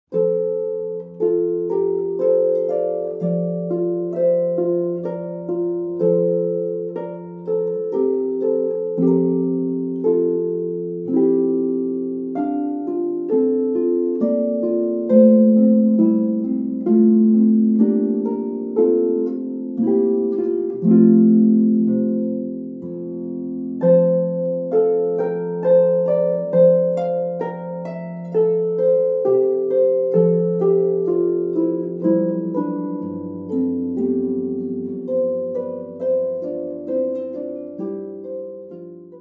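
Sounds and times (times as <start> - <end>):
pedal harp piece: 0.0 - 39.2.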